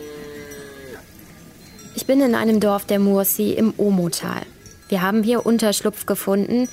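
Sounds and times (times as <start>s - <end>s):
cow mooing in village enclosure: 0.0s - 1.1s
speech: 2.0s - 6.7s.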